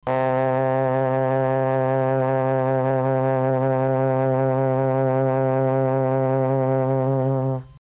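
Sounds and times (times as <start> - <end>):
m300 trombone: 0.0 - 7.8.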